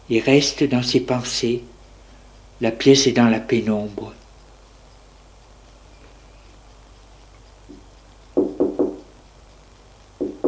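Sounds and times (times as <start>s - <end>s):
speech: 0.1s - 1.7s, 2.6s - 4.2s
knocking on a door: 8.4s - 9.1s, 10.2s - 10.4s.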